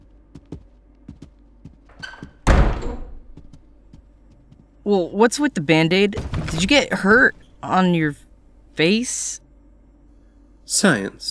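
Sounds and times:
door squeaky creak: 1.9 - 3.7, 6.2 - 7.8
door latch clicks and knocks: 2.0 - 3.4
door closing with a solid loud thud: 2.0 - 3.6, 6.2 - 7.6
speech: 4.9 - 8.2, 8.8 - 9.4, 10.7 - 11.2.

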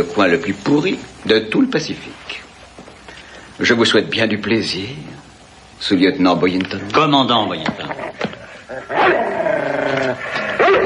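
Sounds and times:
speech: 0.0 - 2.4, 3.6 - 5.1, 5.8 - 8.0
dog growling and snarling aggressively: 7.9 - 10.8
dog barking sharply: 10.6 - 10.8.

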